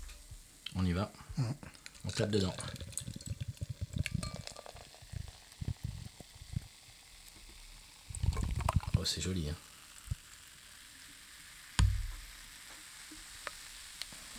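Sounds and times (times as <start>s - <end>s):
beer pouring with fizzing foam and bubbles: 0.0s - 14.3s
speech: 0.8s - 2.8s, 9.0s - 9.7s
liquid splashing: 1.6s - 9.3s
glass clinks: 4.0s - 4.9s.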